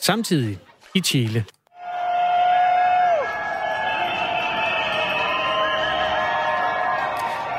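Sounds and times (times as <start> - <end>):
speech: 0.0 - 1.6
street protest crowd shouting: 1.8 - 7.5.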